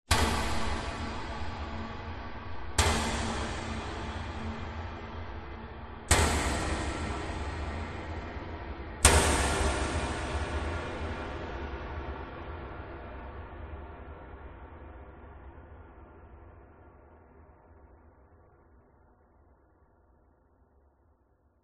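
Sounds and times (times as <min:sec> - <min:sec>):
metal hits with huge long reverb: 0:00.1 - 0:14.4.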